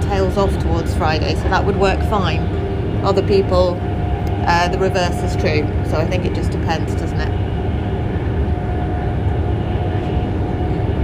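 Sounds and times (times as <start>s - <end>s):
rumble from inside a moving train: 0.0s - 11.0s
speech: 0.3s - 7.5s.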